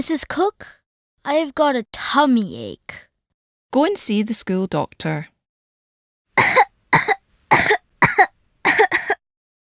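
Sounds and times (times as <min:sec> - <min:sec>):
speech: 0:00.0 - 0:03.1, 0:03.7 - 0:05.3
harsh coughs: 0:06.4 - 0:09.2.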